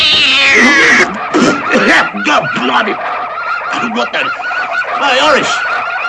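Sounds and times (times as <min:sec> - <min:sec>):
tabby cat yowling: 0:00.0 - 0:01.1
laughter: 0:00.2 - 0:06.0
speech: 0:01.9 - 0:03.2, 0:03.8 - 0:06.0.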